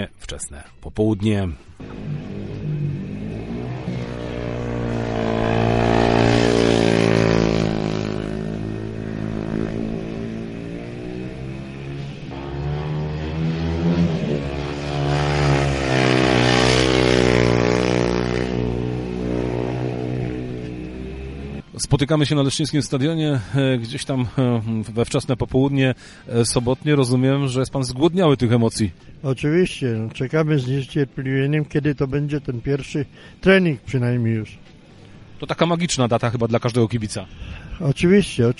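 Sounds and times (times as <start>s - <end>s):
speech: 0.0s - 2.2s, 22.1s - 34.7s, 35.4s - 38.5s
speedway motorcycle engines roaring at the Smoczyk Stadium in Leszno Poland: 1.8s - 25.0s.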